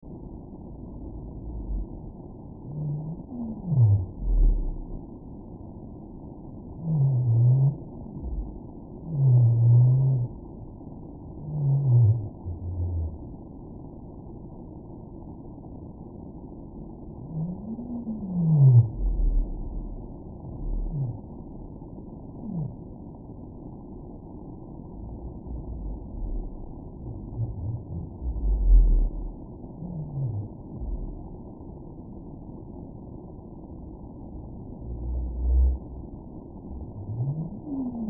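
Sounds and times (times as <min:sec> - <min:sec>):
whales: 0:01.1 - 0:05.0, 0:06.7 - 0:10.7, 0:11.3 - 0:13.3, 0:17.2 - 0:23.0, 0:24.5 - 0:31.4, 0:34.4 - 0:38.0.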